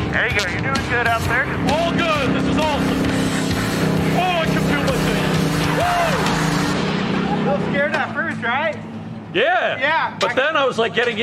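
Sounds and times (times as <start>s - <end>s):
brief voice-like sounds: 0.0s - 3.3s, 4.0s - 6.3s, 7.1s - 11.2s
race car engine droning while driving: 0.0s - 10.2s
speech: 0.1s - 3.2s, 7.4s - 11.2s.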